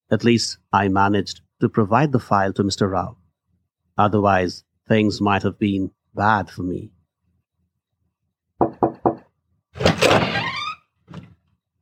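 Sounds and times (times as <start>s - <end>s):
speech: 0.1s - 3.2s, 4.0s - 7.0s
knocks on a door: 8.6s - 9.3s
door swinging or sliding open with a scraping whoosh: 9.8s - 11.4s.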